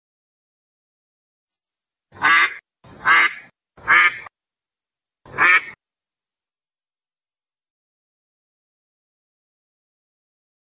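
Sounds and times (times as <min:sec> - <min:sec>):
duck quacking: 0:02.2 - 0:04.3, 0:05.3 - 0:05.8.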